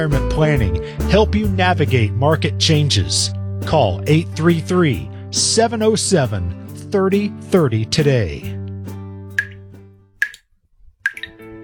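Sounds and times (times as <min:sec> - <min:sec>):
speech: 0:00.0 - 0:08.6
leaky faucet dripping: 0:09.4 - 0:11.4.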